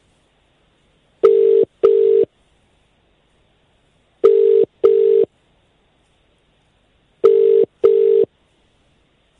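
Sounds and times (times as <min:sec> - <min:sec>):
telephone ringback tone with double-burst rings: 0:01.2 - 0:02.3, 0:04.2 - 0:05.3, 0:07.2 - 0:08.3.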